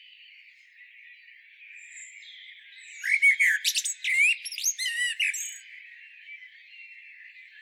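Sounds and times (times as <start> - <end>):
common blackbird Turdus merula squealing and chattering: 3.0 - 5.6.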